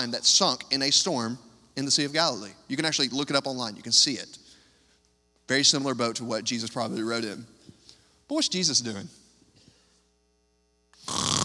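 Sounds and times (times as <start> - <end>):
speech: 0.0 - 4.4, 5.5 - 7.6, 8.3 - 9.2
voice imitating snoring: 11.0 - 11.4.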